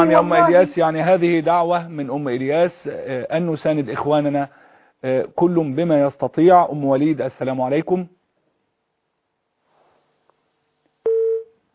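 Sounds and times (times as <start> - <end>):
speech: 0.0 - 8.2
steady mid-pitched telephone beep: 11.1 - 11.5.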